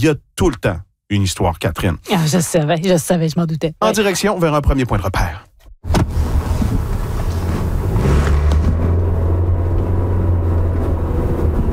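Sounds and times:
speech: 0:00.0 - 0:06.2
car road rumble: 0:05.8 - 0:11.7.

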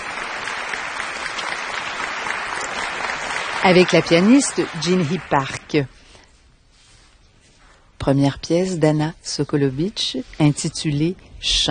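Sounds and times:
concert hall audience applause at a sold-out recital: 0:00.0 - 0:05.6
speech: 0:03.6 - 0:06.0, 0:08.0 - 0:11.6.

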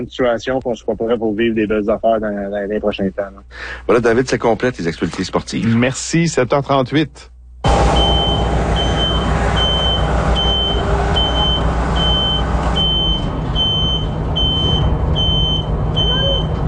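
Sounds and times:
speech: 0:00.0 - 0:08.1
aerial lift truck low engine rumble: 0:07.6 - 0:16.6
aerial lift truck reversing alarm beeping at high pitch: 0:07.6 - 0:16.6.

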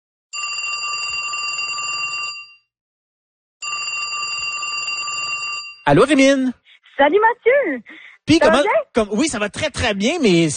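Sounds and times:
telephone ringing on an outgoing call: 0:00.4 - 0:02.6, 0:03.6 - 0:05.8
speech: 0:05.8 - 0:10.5.

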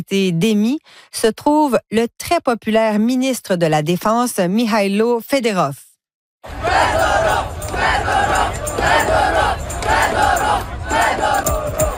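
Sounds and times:
speech: 0:00.0 - 0:05.8, 0:06.4 - 0:08.3
crowd of thousands of protesters chanting in the streets: 0:06.4 - 0:11.9.

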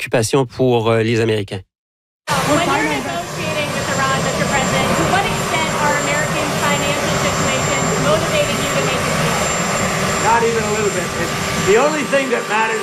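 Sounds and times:
speech: 0:00.0 - 0:01.7, 0:02.3 - 0:03.1, 0:10.4 - 0:12.8
helicopter roar with a whining tonal hum: 0:02.3 - 0:12.8.

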